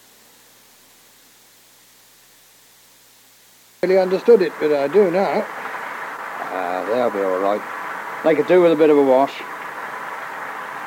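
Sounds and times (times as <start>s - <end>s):
speech: 3.8s - 5.6s, 6.5s - 9.5s
heavy rain pouring: 3.8s - 10.8s.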